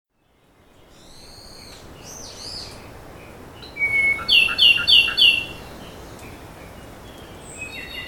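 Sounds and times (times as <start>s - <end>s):
Ryukyu robin song on Nakanoshima: 0.2s - 8.0s
steady background hiss: 0.2s - 8.0s
faint high bird calls: 0.8s - 2.9s, 3.6s - 6.4s.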